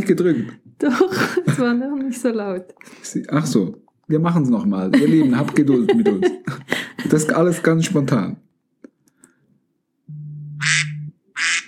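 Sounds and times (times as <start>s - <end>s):
speech: 0.0s - 8.4s
laughter: 0.8s - 1.8s, 4.9s - 8.3s
timer alarm playing an electronic duck quack: 10.2s - 11.6s.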